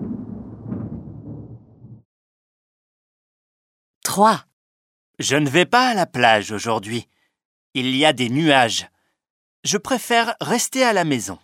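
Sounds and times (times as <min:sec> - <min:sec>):
rolling thunder during a storm: 0:00.0 - 0:02.0
speech: 0:04.2 - 0:04.5, 0:05.2 - 0:08.9, 0:09.6 - 0:11.4.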